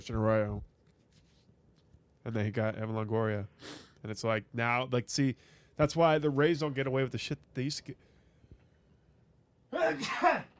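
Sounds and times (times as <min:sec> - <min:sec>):
speech: 0:00.0 - 0:00.7, 0:02.2 - 0:08.1, 0:09.8 - 0:10.5
person sneezing: 0:09.7 - 0:10.5.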